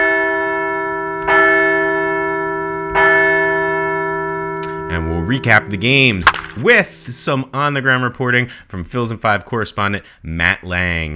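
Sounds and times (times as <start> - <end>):
large bell ringing: 0.0 - 7.0
speech: 5.0 - 11.1.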